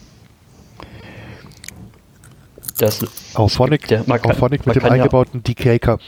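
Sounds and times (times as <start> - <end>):
loud crunching of chips while eating: 1.4 - 3.4
speech: 2.8 - 6.0.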